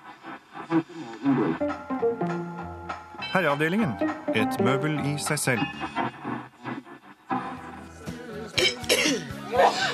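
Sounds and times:
speech: 0.7 - 2.3, 3.3 - 6.0
sustained tones in a busy cluttered background: 1.5 - 6.9
short rough coughs: 8.6 - 9.9
throaty throat clearing: 8.6 - 9.9.

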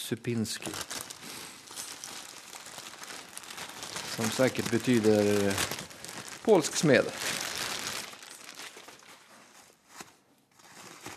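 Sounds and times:
speech: 0.1 - 1.0, 4.2 - 5.8, 6.4 - 7.4
small plastic bag crinkling: 0.5 - 9.8, 10.5 - 11.1.

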